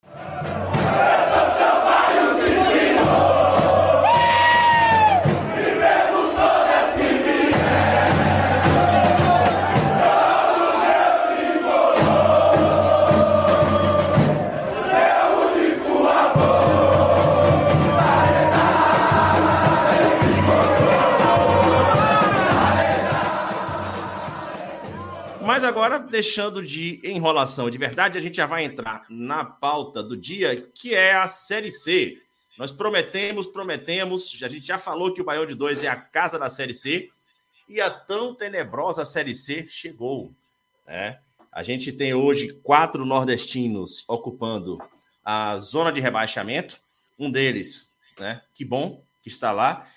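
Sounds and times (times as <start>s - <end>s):
football fans chanting in a stadium: 0.0s - 25.8s
speech: 26.1s - 49.9s.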